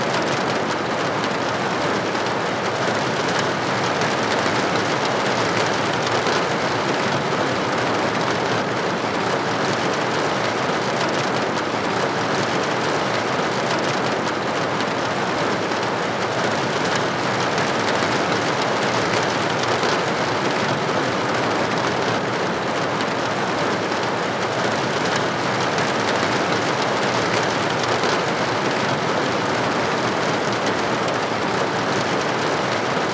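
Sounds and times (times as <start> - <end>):
rain on window: 0.1 - 33.1.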